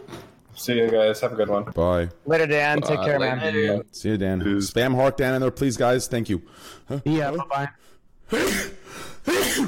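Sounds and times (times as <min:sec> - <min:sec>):
speech: 0:00.6 - 0:08.7
forceful sneeze: 0:08.3 - 0:09.6.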